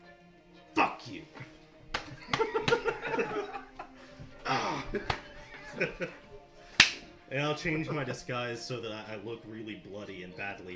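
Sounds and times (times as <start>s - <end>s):
laugh-like sounds: 0.8s - 7.1s
speech: 1.0s - 1.5s, 5.8s - 6.2s, 7.3s - 10.7s
sharp smacking slaps: 1.4s - 7.2s
breathy voice: 3.0s - 6.8s.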